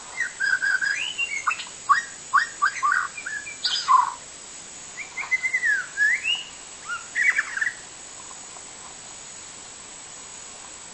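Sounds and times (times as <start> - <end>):
wild white-rumped shama singing in forest: 0.2 - 4.1, 5.0 - 7.4.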